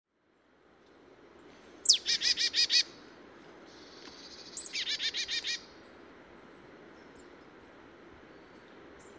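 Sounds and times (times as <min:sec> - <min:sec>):
Marsh tit Poecile palustris calls with buzzy nasal notes: 0:01.8 - 0:02.9, 0:03.7 - 0:05.6.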